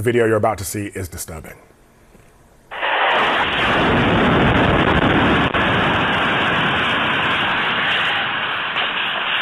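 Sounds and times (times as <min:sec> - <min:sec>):
speech: 0:00.0 - 0:01.7
harsh sustained roaring rumble: 0:02.7 - 0:09.4
missile strike hitting a village grocery store in Kharkiv region: 0:02.7 - 0:09.4.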